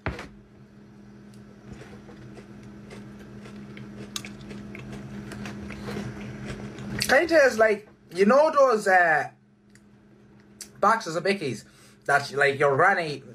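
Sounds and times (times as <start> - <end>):
biting and chewing a soft melting biscuit: 1.6 - 7.1
speech: 7.1 - 9.4, 10.8 - 13.3.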